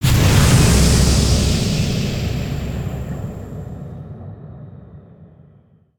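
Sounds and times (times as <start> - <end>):
big geyser burst: 0.0 - 4.0.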